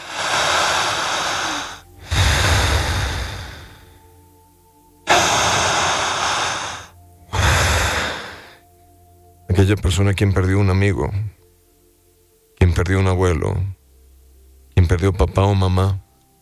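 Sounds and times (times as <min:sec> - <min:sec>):
slow deep breathing: 0:00.0 - 0:04.4, 0:05.1 - 0:08.7
speech: 0:09.6 - 0:11.4, 0:12.8 - 0:13.8, 0:14.9 - 0:16.0.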